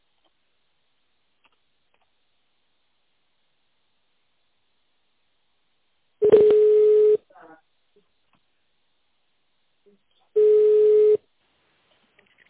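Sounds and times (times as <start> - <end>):
telephone keypad tones dialing an extension number: 6.2 - 7.2, 10.4 - 11.2.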